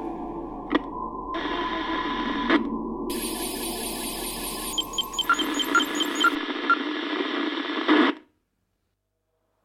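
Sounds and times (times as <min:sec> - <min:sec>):
crackling FM radio static: 0:01.4 - 0:08.3.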